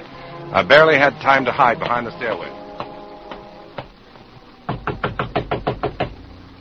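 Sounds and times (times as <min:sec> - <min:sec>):
speech: 0:00.5 - 0:02.6
loud knocking on a door: 0:04.7 - 0:06.2.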